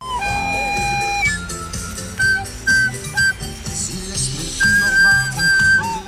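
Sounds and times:
shrill whistle blasts at a small street carnival procession in Breda: 0.0 - 3.4, 4.6 - 6.0.

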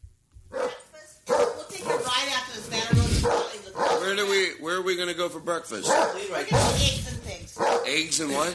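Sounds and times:
dog barking inside a house: 0.5 - 2.2, 3.1 - 4.4, 5.8 - 6.9, 7.6 - 8.0
speech: 4.1 - 8.5.

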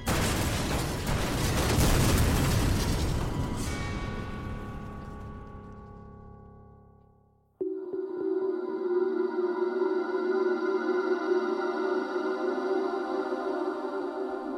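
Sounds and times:
series of heavy explosions: 0.0 - 4.7
low steady tonal drone: 7.6 - 14.5.

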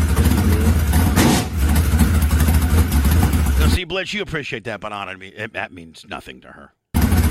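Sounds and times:
open-wheel modified race car engine with a four-barrel carburetor revving: 0.0 - 3.8, 7.0 - 7.2
speech: 4.0 - 6.8.

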